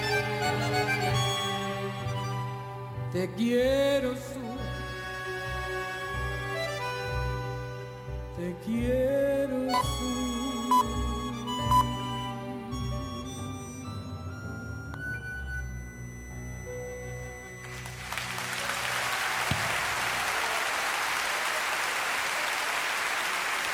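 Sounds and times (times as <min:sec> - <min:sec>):
sung folk performance: 0:00.0 - 0:19.2
speech: 0:03.1 - 0:04.6, 0:08.4 - 0:10.2
live concert audience applause: 0:17.5 - 0:23.7.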